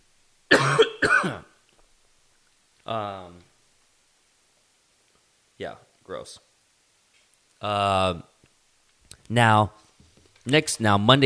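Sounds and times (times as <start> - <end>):
harsh rasping coughs: 0.5 - 1.6
speech: 2.9 - 3.4, 5.6 - 6.5, 7.6 - 8.3, 9.3 - 9.8, 10.4 - 11.2.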